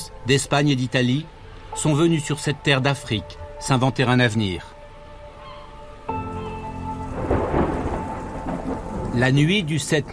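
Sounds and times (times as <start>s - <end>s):
speech: 0.2s - 4.8s, 9.2s - 10.1s
deep thunder rolling over a farm in North Africa: 6.9s - 10.1s
steady night rain pattering over a farm in North Africa: 6.9s - 10.1s.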